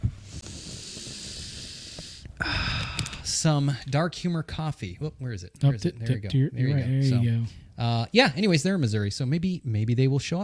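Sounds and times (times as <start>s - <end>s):
person sniffing coffee: 0.1s - 3.3s
person snorting inhale: 0.2s - 3.3s
speech: 3.3s - 10.4s.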